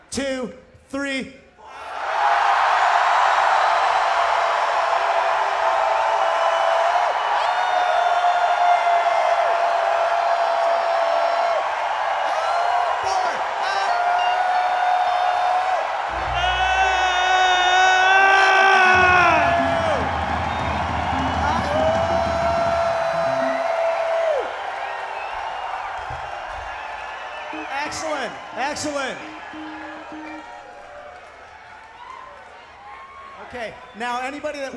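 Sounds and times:
speech: 0:00.1 - 0:01.4
audience yelling and whooping: 0:01.7 - 0:33.5.

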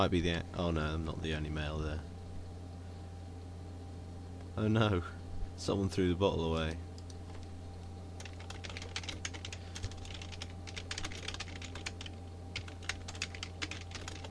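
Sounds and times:
speech: 0:00.0 - 0:02.1, 0:04.6 - 0:06.9
low electrical hum: 0:00.0 - 0:14.2
typing on a computer keyboard: 0:08.2 - 0:14.2.

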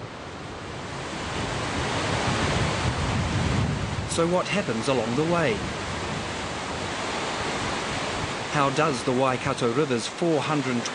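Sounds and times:
surf breaking on the Tasman Sea coast at the Waikato River mouth: 0:00.0 - 0:10.9
speech: 0:04.2 - 0:05.8, 0:08.5 - 0:10.9.

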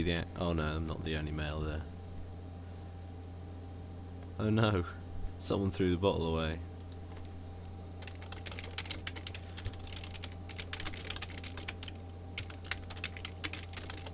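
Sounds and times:
speech: 0:00.0 - 0:02.0, 0:04.4 - 0:06.7
steady low electrical hum: 0:00.0 - 0:14.1
typing on a computer keyboard: 0:08.0 - 0:14.1.

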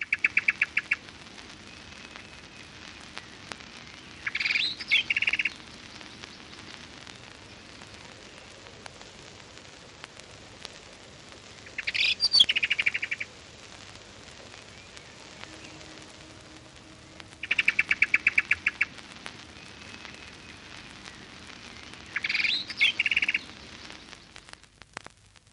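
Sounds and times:
steady hissing outdoor background: 0:00.0 - 0:25.5
blackbird giving frantic high-pitched alarm chatters: 0:04.2 - 0:05.6, 0:11.8 - 0:13.2, 0:17.4 - 0:18.9, 0:22.0 - 0:23.5.

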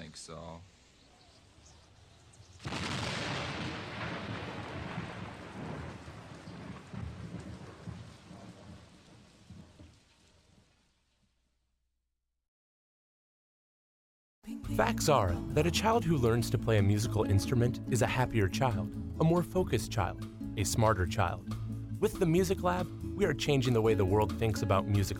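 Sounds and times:
speech: 0:00.2 - 0:00.7, 0:14.6 - 0:25.1
loud thunderclap rolling into a rumbling peal: 0:02.6 - 0:10.5
steady rain hissing: 0:02.6 - 0:11.1.

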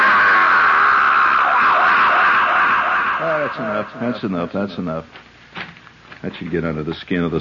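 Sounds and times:
loud prolonged human primal scream with echo chamber effect: 0:00.0 - 0:04.4
speech: 0:03.5 - 0:05.3, 0:06.2 - 0:07.3.

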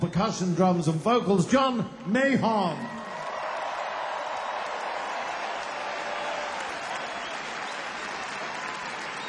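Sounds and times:
speech: 0:00.1 - 0:03.0
large audience applauding band musicians: 0:02.9 - 0:09.2.

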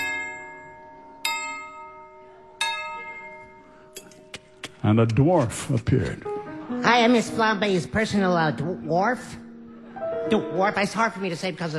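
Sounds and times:
doorbell chime: 0:00.0 - 0:03.9
speech: 0:04.8 - 0:09.4, 0:10.3 - 0:11.7.

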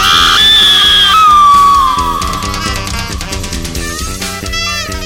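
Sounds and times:
woman screaming: 0:00.0 - 0:03.7
loud dramatic music: 0:01.2 - 0:04.8.

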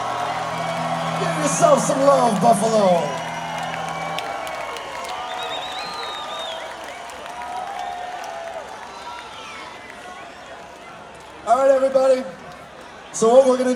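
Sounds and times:
whoops from a concert crowd: 0:00.0 - 0:09.6
concert crowd clapping: 0:00.0 - 0:13.0
large concert crowd yelling a song request: 0:00.0 - 0:13.7
speech: 0:01.4 - 0:03.2, 0:13.2 - 0:13.7.

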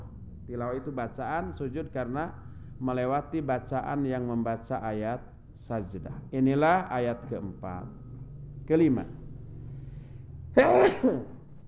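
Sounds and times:
speech: 0:00.5 - 0:08.0, 0:08.7 - 0:09.2, 0:10.6 - 0:11.4
sneeze: 0:10.6 - 0:11.4.

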